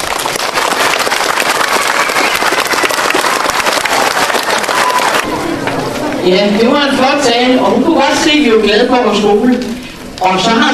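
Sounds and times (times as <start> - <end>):
large audience applause congratulating a school: 0.0 - 5.3
speech: 6.2 - 10.7.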